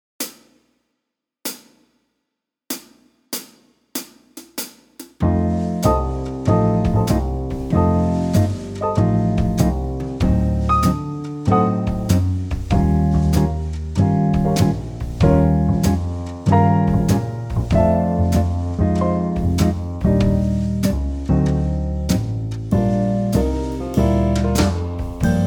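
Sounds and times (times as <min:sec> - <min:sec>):
easy swing music at 96 BPM: 0:05.2 - 0:25.4.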